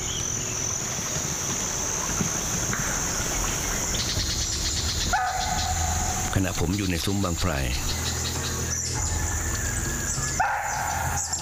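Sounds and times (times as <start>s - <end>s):
faint bird calls: 0.0s - 11.4s
forest insects humming: 0.0s - 11.4s
barking deer alarm bark at a forest salt lick: 5.1s - 6.3s, 10.4s - 11.4s
speech: 6.4s - 8.0s.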